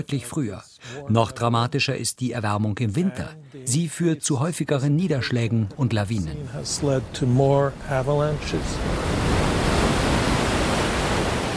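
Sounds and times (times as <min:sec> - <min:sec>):
speech: 0:00.0 - 0:09.2
afternoon wind picking up: 0:06.7 - 0:11.5.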